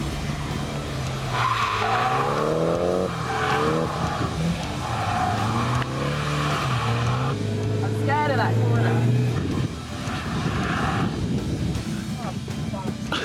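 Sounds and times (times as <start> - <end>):
Nissan S15 engine droning: 0.0 - 12.3
Nissan S15 tyres squealing while drifting during practice in Ireland: 1.1 - 8.1.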